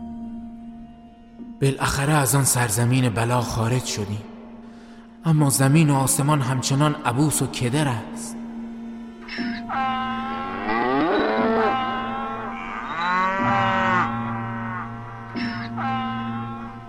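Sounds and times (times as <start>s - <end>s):
speech: 1.6s - 4.3s, 5.2s - 8.4s
cows mooing: 9.2s - 16.8s
donkeys braying: 9.2s - 16.8s
sheep bleating: 9.3s - 16.8s.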